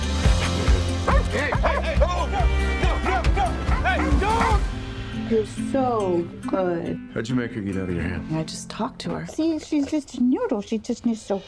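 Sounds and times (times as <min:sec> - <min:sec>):
dog barking and yipping: 0:01.0 - 0:01.8, 0:03.0 - 0:04.7
laughter: 0:01.0 - 0:04.8
speech: 0:05.3 - 0:11.4.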